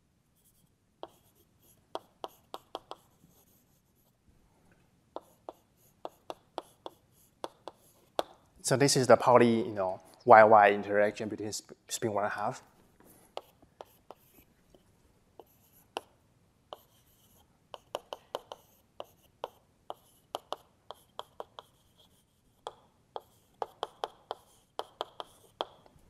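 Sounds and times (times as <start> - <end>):
writing tool tapping on a board: 1.0 - 3.5, 5.1 - 8.4, 13.3 - 14.8, 15.4 - 26.0
speech: 8.7 - 12.7.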